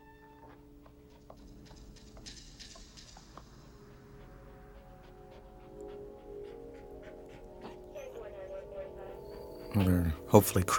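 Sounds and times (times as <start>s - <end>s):
dog panting: 0.5s - 10.6s
dog whimpering: 3.4s - 10.5s
speech: 9.8s - 10.7s.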